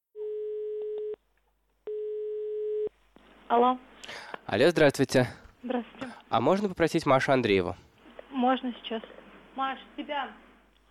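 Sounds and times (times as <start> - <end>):
telephone line tone as a call is placed: 0.2 - 1.2, 1.9 - 2.9
speech: 3.5 - 10.4.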